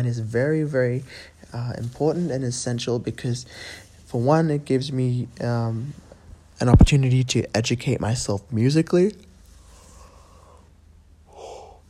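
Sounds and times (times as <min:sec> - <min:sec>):
speech: 0:00.0 - 0:06.0, 0:06.6 - 0:09.3
person yawning: 0:11.3 - 0:11.8.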